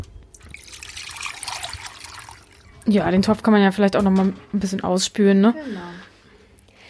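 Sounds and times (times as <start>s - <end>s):
whey with bits of curd poured through cheesecloth over strained cheese curd: 0.4s - 2.9s
speech: 2.8s - 6.1s.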